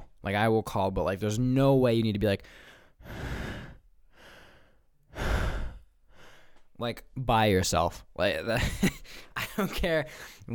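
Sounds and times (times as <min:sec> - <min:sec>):
speech: 0:00.2 - 0:03.3, 0:06.8 - 0:10.5
person breathing heavily: 0:02.4 - 0:06.7, 0:10.1 - 0:10.5.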